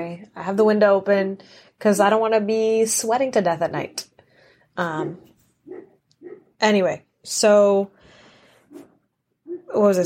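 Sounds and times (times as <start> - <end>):
speech: 0.1 - 4.1, 4.8 - 5.9, 6.6 - 8.0, 9.7 - 10.0
two dogs barking next door at night: 5.0 - 6.6, 8.7 - 10.0.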